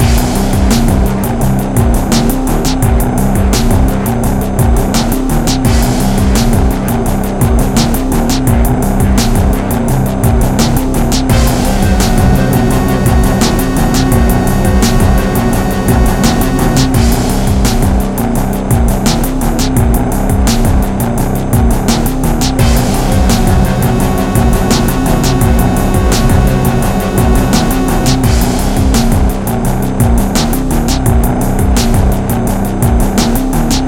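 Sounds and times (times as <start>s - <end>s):
end music: 0.0s - 33.8s.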